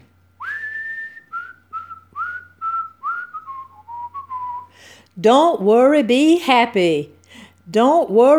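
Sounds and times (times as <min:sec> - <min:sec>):
faint low hum: 0:00.0 - 0:08.3
person whistling a short cheerful tune: 0:00.4 - 0:04.8
speech: 0:05.2 - 0:08.3.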